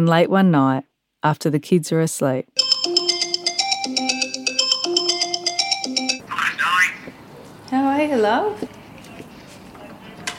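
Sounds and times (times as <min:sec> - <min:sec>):
speech: 0:00.0 - 0:02.6, 0:08.0 - 0:08.7
mobile phone ringing with a melodic electronic ringtone: 0:02.6 - 0:06.2.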